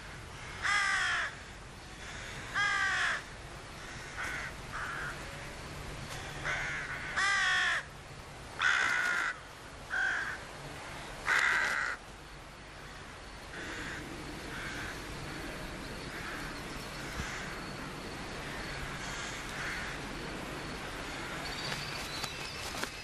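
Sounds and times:
crows cawing at a nesting colony: 0.0 - 5.2, 6.1 - 7.9, 8.6 - 10.4, 11.2 - 12.0, 12.8 - 15.4, 16.0 - 20.2, 21.0 - 21.8
outdoor hum: 0.0 - 23.0.

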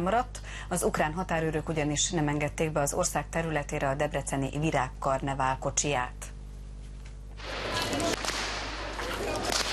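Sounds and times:
speech: 0.0 - 6.3
whips cracking during a procession: 7.4 - 9.7.

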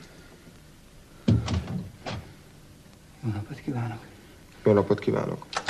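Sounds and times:
door closing thud and rattle: 1.3 - 2.3
speech: 3.8 - 5.6.

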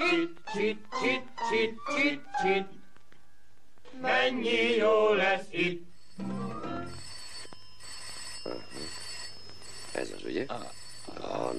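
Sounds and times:
speech: 0.1 - 2.7, 4.0 - 5.9
telephone ringing with a bright bell tone: 5.6 - 11.5.

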